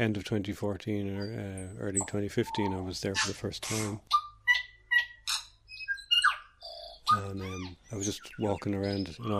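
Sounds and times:
speech: 0.0s - 4.2s, 7.1s - 9.3s
New Zealand tui song with whistles, chirps, buzzes and warbles: 1.2s - 3.3s, 4.1s - 9.3s.

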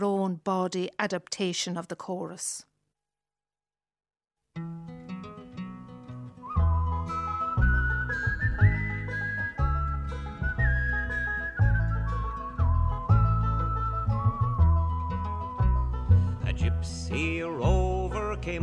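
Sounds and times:
speech: 0.0s - 2.7s
instrumental folk backing: 4.6s - 18.6s
whistled folk melody: 5.2s - 18.6s.

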